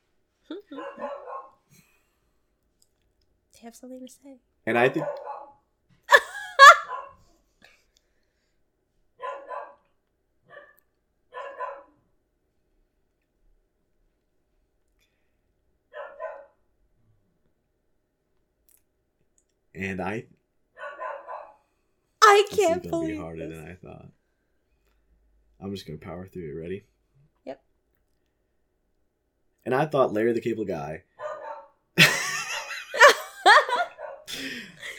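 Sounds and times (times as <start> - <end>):
dogs barking and yelping: 0.8 - 1.6, 4.8 - 5.6, 6.6 - 7.2, 9.2 - 9.8, 10.5 - 12.0, 15.9 - 16.6, 20.8 - 21.6, 31.2 - 31.7, 33.7 - 34.3
speech: 3.6 - 5.3, 19.8 - 20.4, 22.3 - 24.2, 25.6 - 27.7, 29.6 - 31.1
laughter: 6.1 - 6.9, 32.0 - 34.9.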